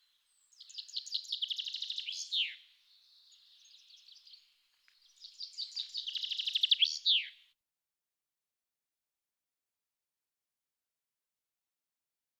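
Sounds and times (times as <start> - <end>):
common chaffinch song: 0.0 - 7.6.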